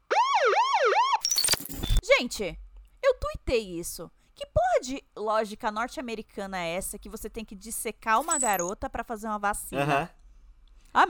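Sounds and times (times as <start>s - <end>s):
loud wailing siren used as a spoiler alert effect: 0.0s - 1.2s
clattering jangly electronic noise: 1.2s - 2.0s, 8.2s - 8.7s
speech: 2.2s - 2.6s, 3.5s - 10.2s.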